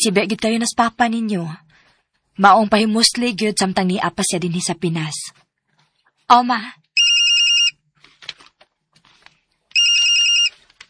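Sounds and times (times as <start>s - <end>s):
speech: 0.0s - 1.7s, 2.4s - 5.4s, 6.3s - 6.8s
mobile phone ringtone for an incoming call: 7.0s - 7.8s, 9.7s - 10.6s.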